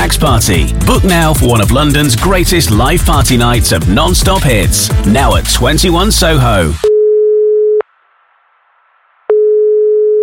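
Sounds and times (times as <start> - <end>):
speech: 0.2 - 6.9
telephone call tone before reaching voicemail: 6.8 - 7.8, 9.3 - 10.2.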